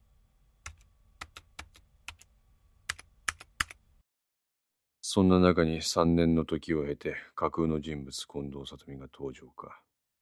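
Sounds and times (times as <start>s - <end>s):
faint steady hum: 0.0s - 4.0s
typing on a computer keyboard: 0.6s - 2.3s, 2.9s - 3.8s
speech: 5.2s - 9.9s.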